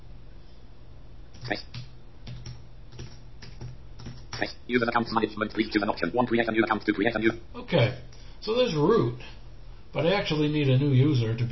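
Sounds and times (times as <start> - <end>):
low steady hum: 0.0 - 11.5
keystrokes on a computer keyboard as a password is entered: 1.3 - 4.5
speech: 1.4 - 1.9, 4.4 - 11.5.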